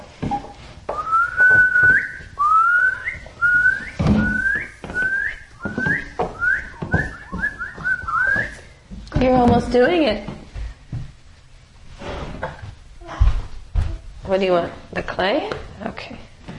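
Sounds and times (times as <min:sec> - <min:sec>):
rustling: 0:00.0 - 0:14.9
person whistling an upward-gliding note: 0:00.9 - 0:08.7
speech: 0:09.7 - 0:10.3, 0:14.3 - 0:16.2.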